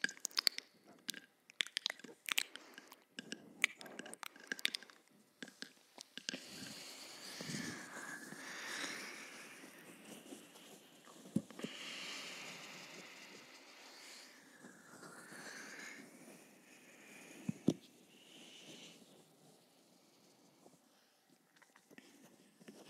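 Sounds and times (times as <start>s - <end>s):
wet mouth clicks, smacks and slurps: 0.0s - 12.1s
breathy sounds: 0.0s - 19.0s.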